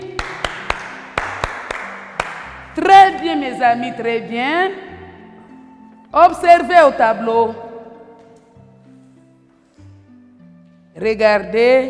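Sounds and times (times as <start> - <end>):
class of pupils clapping in a steady rhythmic beat: 0.0 - 2.8
speech: 2.8 - 4.8, 6.1 - 7.6, 11.0 - 11.8.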